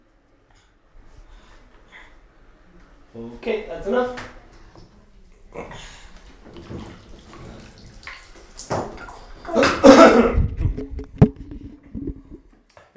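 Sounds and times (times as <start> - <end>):
speech: 3.1 - 4.4
child splashing water in a bathtub: 3.9 - 12.5
water dripping in a bathtub: 6.1 - 12.5.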